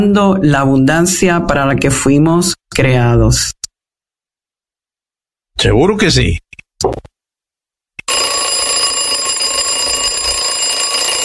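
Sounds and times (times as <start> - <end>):
speech: 0.0 - 3.6, 5.6 - 7.1
alarm clock ringing: 8.1 - 11.2.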